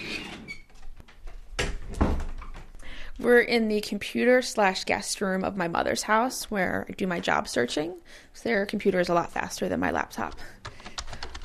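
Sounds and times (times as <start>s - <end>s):
old door creaking and squeaking: 0.0s - 1.0s
speech: 3.2s - 10.6s.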